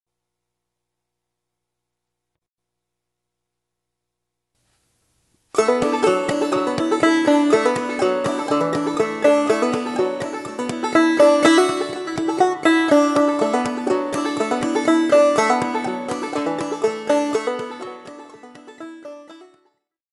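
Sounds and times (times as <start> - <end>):
banjo playing a reel: 5.5 - 19.7.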